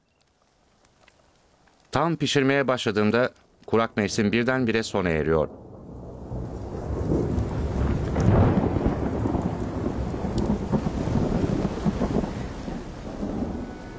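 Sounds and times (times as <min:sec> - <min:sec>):
speech: 0:02.0 - 0:05.6
heavy rain: 0:03.6 - 0:13.9
deep thunder rumbling: 0:03.9 - 0:13.9
gusts of wind buffeting the microphone: 0:05.7 - 0:13.9.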